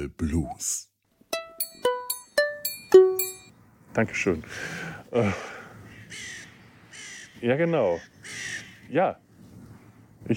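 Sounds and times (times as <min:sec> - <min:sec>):
speech: 0:00.0 - 0:00.9, 0:04.0 - 0:06.2, 0:07.4 - 0:09.2
crows cawing: 0:05.3 - 0:08.9.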